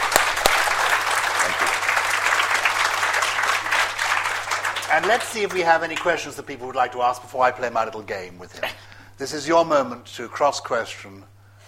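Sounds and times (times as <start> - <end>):
audience applauding a guest speaker at a talk: 0.0 - 6.3
speech: 4.9 - 11.4.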